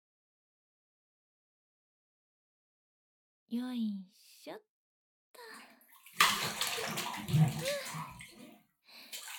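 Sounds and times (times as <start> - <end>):
speech: 3.5 - 4.7, 6.8 - 8.2
hot bathwater splashing as someone climbs into a bath: 5.5 - 9.3.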